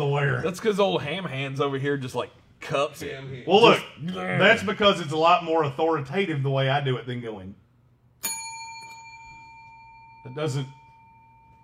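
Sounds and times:
speech: 0:00.4 - 0:07.6, 0:10.2 - 0:10.8
well-worn TV studio bell ringing: 0:08.2 - 0:11.6.

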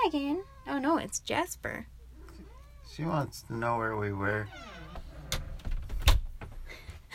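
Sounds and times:
speech: 0:00.1 - 0:02.0, 0:02.9 - 0:04.7
closet door sliding pushed by a cat: 0:04.3 - 0:06.6.

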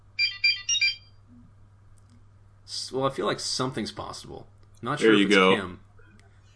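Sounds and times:
faint low hum: 0:00.0 - 0:06.5
short electronic phone alert chiming tones: 0:00.2 - 0:01.0
speech: 0:02.9 - 0:05.9.

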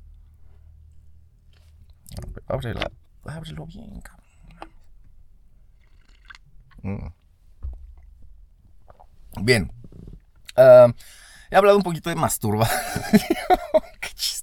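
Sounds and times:
speech: 0:02.5 - 0:04.2, 0:06.8 - 0:07.2, 0:09.4 - 0:09.8, 0:10.6 - 0:13.8
person sipping coffee with wet slurping and swallowing: 0:05.8 - 0:07.2, 0:08.8 - 0:09.2
man muttering: 0:06.8 - 0:07.2
laughter: 0:12.6 - 0:14.0.

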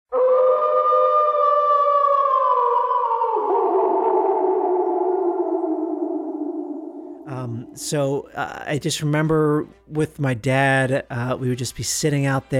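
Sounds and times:
long eerie howling wail sound effect: 0:00.1 - 0:08.0
speech: 0:07.8 - 0:12.5.

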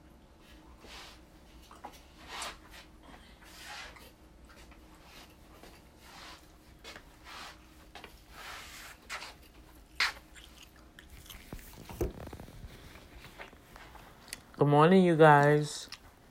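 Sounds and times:
chewing and biting crunchy breakfast food: 0:09.4 - 0:14.6, 0:15.8 - 0:16.2
speech: 0:14.6 - 0:15.8.

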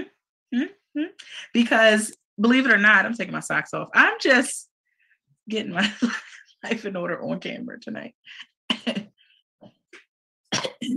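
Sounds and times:
speech: 0:00.5 - 0:04.7, 0:05.5 - 0:09.8
harsh coughing fit with choking: 0:10.5 - 0:10.9.

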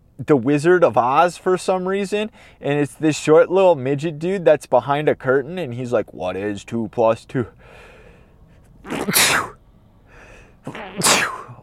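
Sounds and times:
speech: 0:00.2 - 0:07.9, 0:08.8 - 0:09.5, 0:10.6 - 0:11.2
soft breath: 0:02.3 - 0:02.6, 0:07.6 - 0:08.8, 0:10.0 - 0:10.6
person sneezing: 0:08.8 - 0:09.6, 0:10.6 - 0:11.6.

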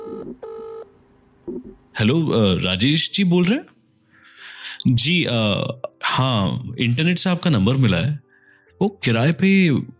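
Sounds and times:
electronic telephone dialing tones: 0:00.0 - 0:00.8
speech: 0:01.6 - 0:03.7, 0:04.6 - 0:09.9.

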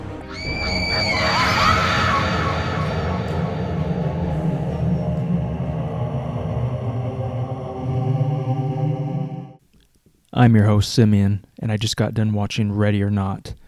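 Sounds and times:
shrill wavering sinister scream: 0:00.0 - 0:06.1
loud dense droning rumble: 0:00.0 - 0:09.6
speech: 0:10.4 - 0:13.6.

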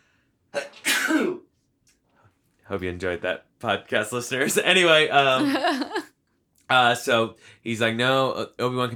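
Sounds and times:
loud sneeze: 0:00.6 - 0:01.5
speech: 0:02.7 - 0:06.1, 0:06.7 - 0:08.9.

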